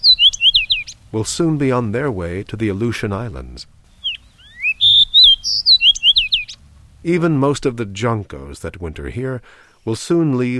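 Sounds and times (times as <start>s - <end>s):
Fox Sparrow singing sweet whistled slurs and short chirps: 0.0s - 1.1s, 3.8s - 6.6s
speech: 1.1s - 3.8s, 7.0s - 10.5s.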